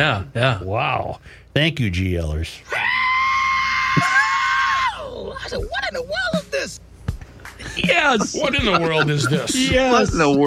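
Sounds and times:
speech: 0.0s - 3.0s, 4.0s - 4.2s, 5.4s - 6.9s, 7.6s - 10.4s
raw strained high-pitched rock-and-roll style scream: 2.7s - 5.2s
laughter: 7.6s - 10.4s.

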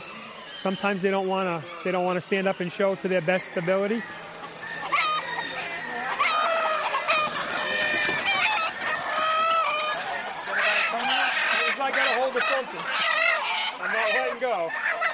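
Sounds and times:
flock of standard Old English game chickens clucking: 0.0s - 15.1s
speech: 0.6s - 4.3s
Old English game rooster crowing: 3.3s - 12.1s.

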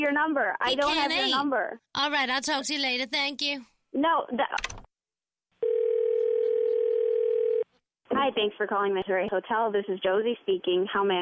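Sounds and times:
speech: 0.0s - 4.8s, 8.1s - 11.2s
telephone dial tone: 5.6s - 7.7s.

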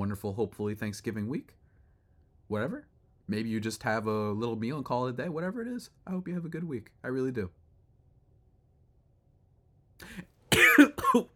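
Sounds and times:
speech: 0.1s - 1.6s, 2.5s - 7.6s, 10.0s - 11.3s
short husky cough: 10.5s - 11.3s.

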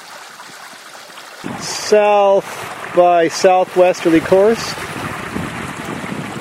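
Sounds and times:
wind picking up aboard a sailboat: 1.4s - 3.1s, 4.2s - 6.4s
speech: 1.4s - 4.8s.

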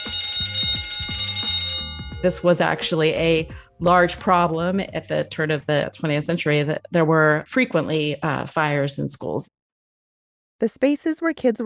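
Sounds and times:
electric fire alarm bell ringing: 0.0s - 3.3s
speech: 2.2s - 9.6s, 10.6s - 11.6s.

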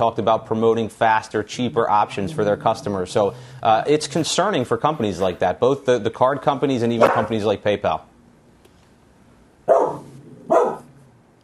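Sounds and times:
speech: 0.0s - 8.1s
dog barking: 7.0s - 7.4s, 9.7s - 10.9s.

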